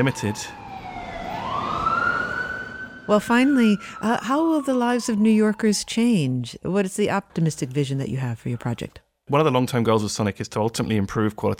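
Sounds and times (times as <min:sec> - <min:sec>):
speech: 0:00.0 - 0:00.6, 0:03.1 - 0:11.5
emergency vehicle siren wailing: 0:00.0 - 0:06.3.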